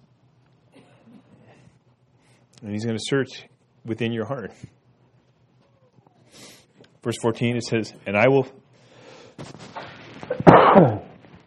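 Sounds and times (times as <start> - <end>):
speech: 2.6 - 4.8, 7.0 - 8.6, 10.8 - 11.0
loud harsh cough: 10.3 - 11.1.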